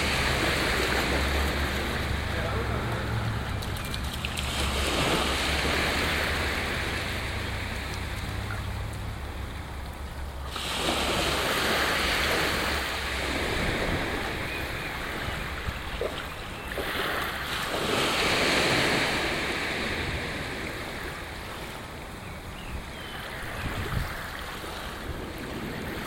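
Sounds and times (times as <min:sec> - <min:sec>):
wind buffeting the microphone: 0:00.0 - 0:17.2, 0:17.8 - 0:26.0
gentle shore break at Playa de Arenillas in Spain: 0:00.0 - 0:26.0.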